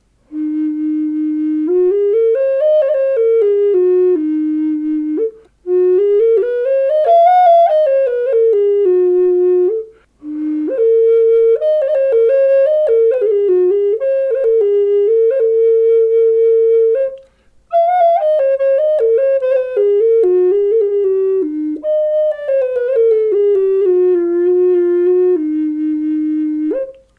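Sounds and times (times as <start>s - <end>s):
Eb4 flute note: 0.2s - 27.1s.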